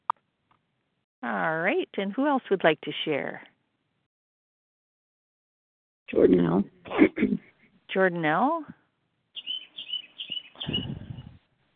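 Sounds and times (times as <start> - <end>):
speech: 1.2 - 3.5, 6.1 - 8.8
small bird chirping in high bright notes: 9.4 - 11.3.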